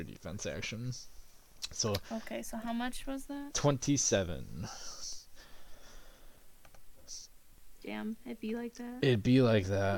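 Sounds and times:
speech: 0.0s - 5.2s, 7.8s - 9.9s
faint breathy hissing: 4.6s - 7.3s
computer mouse clicking: 6.6s - 6.8s.

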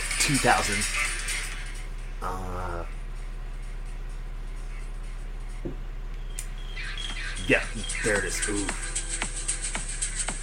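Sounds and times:
steady low hum: 0.0s - 10.4s
speech: 0.3s - 1.1s, 2.2s - 3.0s, 7.5s - 9.0s
soft knock: 5.6s - 5.8s
high bird chirps: 6.2s - 8.7s.

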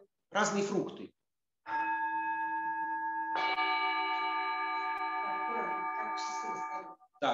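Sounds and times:
speech: 0.3s - 1.8s
two singing bowls ringing: 1.7s - 7.0s.

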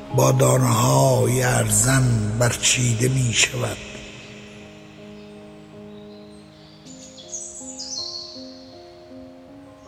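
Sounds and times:
steady sustained musical drone of low tones: 0.0s - 7.3s
sparrows chirping by the window: 0.0s - 9.8s
speech: 0.2s - 3.9s.

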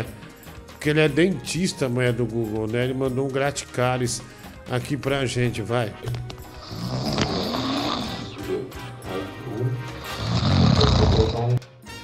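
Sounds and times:
speech: 0.8s - 6.3s
woman snoring loudly: 6.6s - 8.5s, 10.0s - 11.6s.

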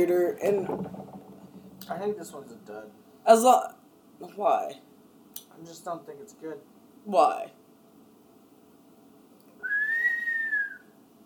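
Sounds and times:
speech: 0.0s - 1.2s, 1.9s - 4.9s, 5.6s - 7.6s
faint noise: 0.0s - 11.2s
person whistling a sustained note: 9.6s - 10.9s.

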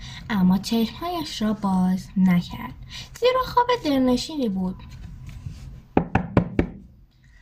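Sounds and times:
speech: 0.3s - 5.0s
sharp loud knocks against a hard surface: 6.0s - 6.9s.

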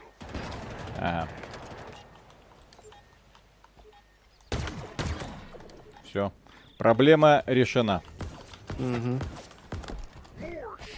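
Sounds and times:
video game gunfire aimed at the player: 0.0s - 2.4s, 4.5s - 5.8s, 8.0s - 10.3s
speech: 1.0s - 1.4s, 6.1s - 8.1s, 8.8s - 9.4s.

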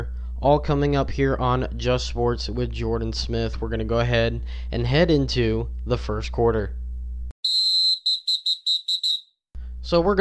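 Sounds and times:
speech: 0.0s - 6.8s, 9.9s - 10.1s
referee whistle blowing: 7.4s - 9.3s.

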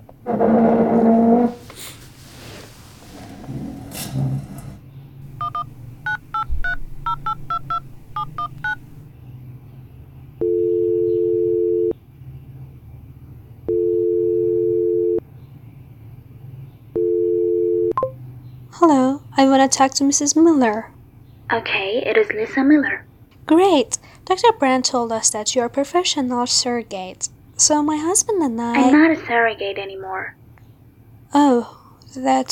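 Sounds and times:
handling noise: 0.0s - 9.1s
telephone keypad beeps dialing a number: 5.3s - 9.0s, 17.0s - 18.2s
telephone ringback tone: 5.3s - 9.0s, 10.4s - 11.9s, 13.7s - 15.2s, 17.0s - 18.2s
speech: 19.4s - 30.4s, 31.3s - 32.5s.

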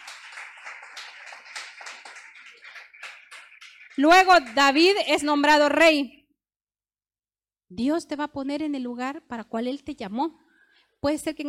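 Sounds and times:
audience applauding: 0.0s - 5.4s
speech: 4.0s - 6.2s, 7.7s - 10.4s, 11.0s - 11.4s.

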